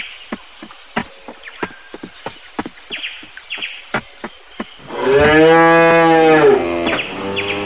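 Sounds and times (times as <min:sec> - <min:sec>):
cow mooing: 0:04.9 - 0:07.6.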